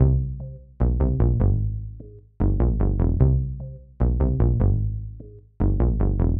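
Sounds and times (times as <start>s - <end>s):
pad bass: 0.0s - 6.3s.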